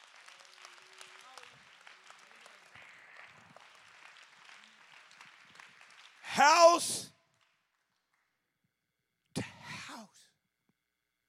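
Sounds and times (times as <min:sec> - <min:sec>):
crowd clapping hands in applause: 0:00.0 - 0:08.2
scattered voices and shouts: 0:06.3 - 0:07.1
speech: 0:06.4 - 0:07.1.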